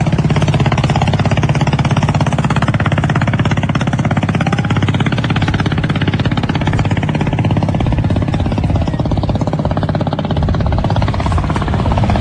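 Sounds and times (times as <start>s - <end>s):
ferry engine droning on a river: 0.0s - 12.1s.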